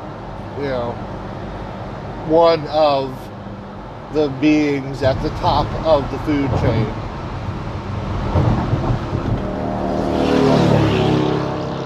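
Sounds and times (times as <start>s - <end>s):
speech: 0.6s - 1.3s, 2.3s - 3.2s, 4.1s - 7.0s
fast motorcycle engine roaring past on a road among slowing cars: 8.2s - 11.8s.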